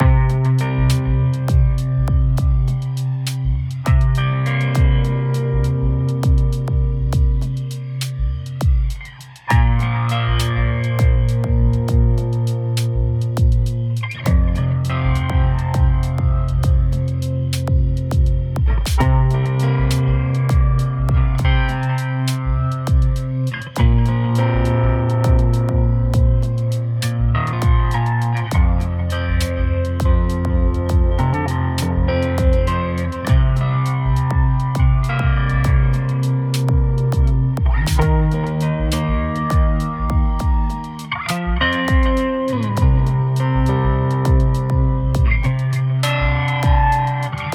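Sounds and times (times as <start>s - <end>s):
drums: 0.0s - 47.5s
guitar riff without delay: 0.0s - 47.5s.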